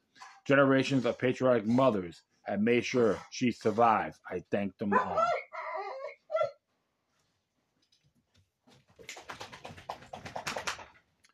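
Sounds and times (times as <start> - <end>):
speech: 0.5 - 5.4
dog whimpering with short high whiny cries: 4.9 - 6.6.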